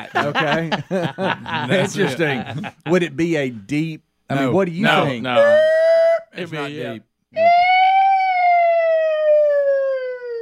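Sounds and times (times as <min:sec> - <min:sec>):
laughter: 0:00.0 - 0:03.0
speech: 0:00.0 - 0:07.6
siren wailing: 0:05.3 - 0:06.2, 0:07.4 - 0:10.4.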